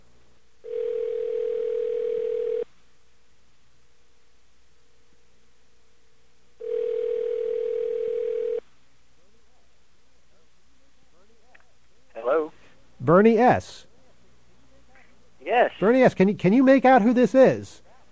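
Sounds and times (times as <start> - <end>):
phone line ringing tone: 0.6 - 2.7, 6.6 - 8.6
speech: 13.1 - 13.9, 15.5 - 17.8.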